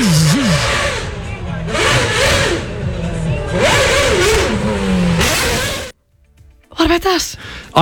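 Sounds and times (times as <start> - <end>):
Formula One race car engine revving: 0.0 - 6.0
speech: 7.0 - 7.8.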